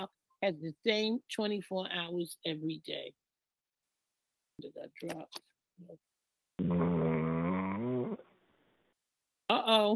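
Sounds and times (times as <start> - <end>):
speech: 0.0 - 3.2, 4.6 - 7.0, 9.6 - 9.9
person snoring: 6.6 - 8.8.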